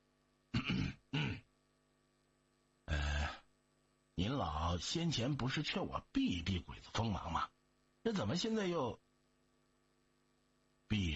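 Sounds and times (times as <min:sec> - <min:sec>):
forceful throaty coughing: 0:00.5 - 0:01.5
speech: 0:04.4 - 0:09.0, 0:10.9 - 0:11.1.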